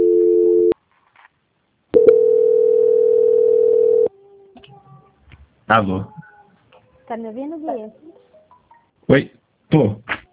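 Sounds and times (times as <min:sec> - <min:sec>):
telephone line tone during a call transfer: 0:00.0 - 0:00.8, 0:02.0 - 0:04.1
speech: 0:05.7 - 0:06.2, 0:07.1 - 0:08.2, 0:09.1 - 0:10.2.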